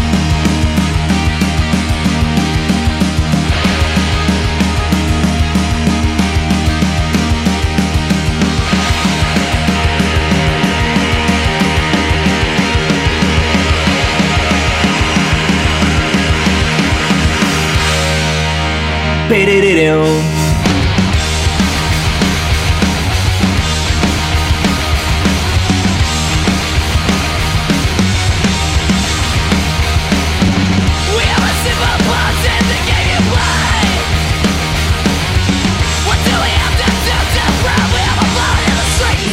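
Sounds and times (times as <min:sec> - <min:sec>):
pounding rock drums: 0:00.0 - 0:18.5, 0:20.4 - 0:39.3
distorted rock guitars: 0:00.0 - 0:39.3
male vocalist shouting hoarsely: 0:19.3 - 0:20.4, 0:31.0 - 0:34.1
speech: 0:19.4 - 0:20.4.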